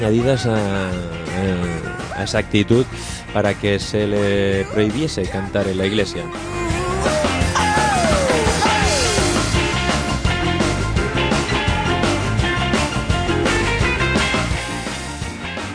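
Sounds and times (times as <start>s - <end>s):
speech: 0.0s - 7.3s
rock and roll singer's high sliding scream: 6.1s - 9.5s
loud driving rock and roll band playing: 6.2s - 15.2s.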